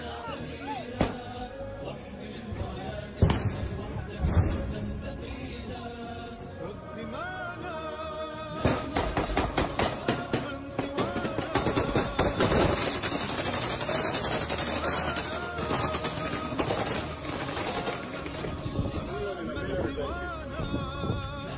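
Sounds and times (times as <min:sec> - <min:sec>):
steady busy noise: 0:00.0 - 0:21.5
gunshots with bullets striking brick walls: 0:01.0 - 0:01.4, 0:08.6 - 0:18.7.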